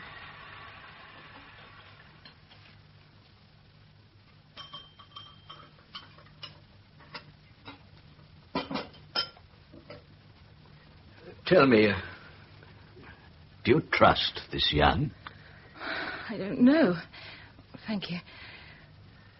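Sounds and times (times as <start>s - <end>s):
low steady hiss from a kettle: 0.0s - 19.3s
china cups and spoons clinking and tapping while tea is made: 4.6s - 6.6s
speech: 11.5s - 12.1s, 13.7s - 15.2s, 16.3s - 17.3s, 17.9s - 18.4s.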